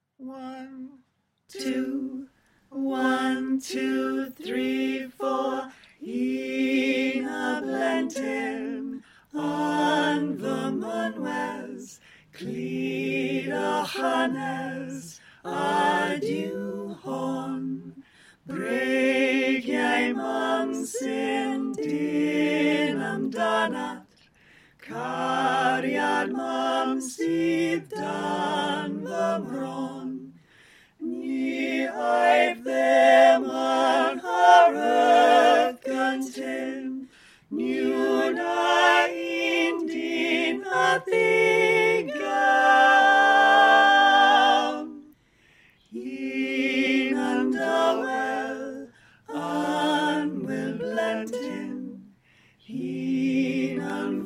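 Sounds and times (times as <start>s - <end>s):
folk choir bass voices singing a lullaby: 0.2s - 54.2s.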